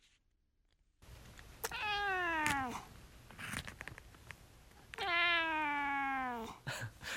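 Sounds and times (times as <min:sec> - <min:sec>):
domestic cat meowing: 0:01.6 - 0:02.9, 0:05.0 - 0:06.5.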